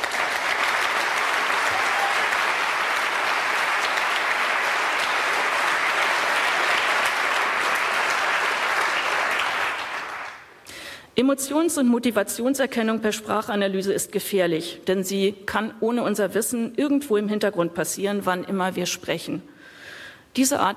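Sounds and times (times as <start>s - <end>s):
audience applause from a large crowd: 0.0s - 10.6s
speech: 11.2s - 19.8s, 20.4s - 20.7s.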